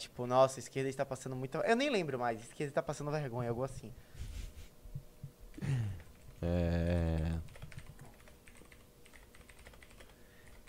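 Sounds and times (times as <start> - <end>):
speech: 0.1 - 4.2, 6.4 - 7.5
gaming keyboard keys clacking: 7.2 - 10.6.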